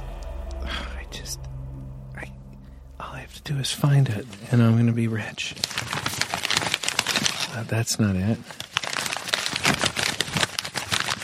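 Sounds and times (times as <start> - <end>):
speech: 3.3 - 6.0, 7.6 - 8.6
big pile of paper rustling and crinkling while being shuffled: 4.1 - 11.2.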